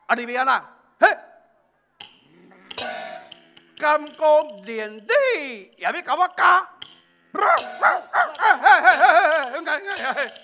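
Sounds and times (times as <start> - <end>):
speech: 0.1 - 1.3, 3.8 - 10.4
stray dog barking and yipping: 7.4 - 9.2
laughter: 7.8 - 10.4.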